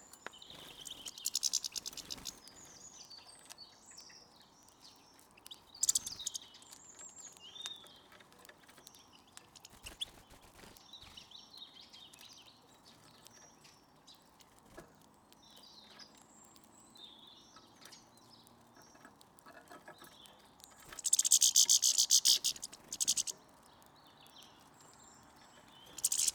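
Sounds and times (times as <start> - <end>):
European goldfinch Carduelis carduelis calls: 0.3 - 3.0, 5.8 - 7.7, 9.5 - 11.2, 20.8 - 23.4, 25.7 - 26.3.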